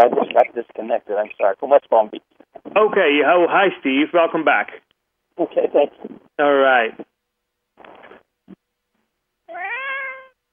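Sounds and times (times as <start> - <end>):
speech: 0.0 - 4.8, 5.4 - 7.1
cat giving a long drawn-out meow: 9.5 - 10.4.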